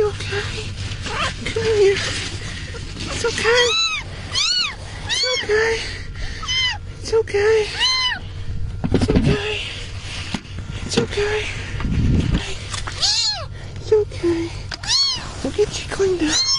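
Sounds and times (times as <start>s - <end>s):
steady low rumble of noise: 0.0s - 16.5s
speech: 3.2s - 3.8s, 7.3s - 7.9s
kitten found beneath tornado debris meowing: 3.4s - 5.5s, 6.4s - 6.8s, 7.7s - 8.2s, 13.0s - 13.5s, 14.8s - 15.3s, 16.2s - 16.5s.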